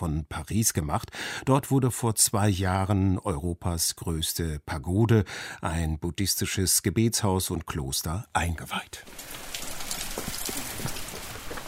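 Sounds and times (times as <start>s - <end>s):
speech: 0.0s - 9.4s
pouring rain at a Buddhist pagoda south of Paris: 9.0s - 11.6s.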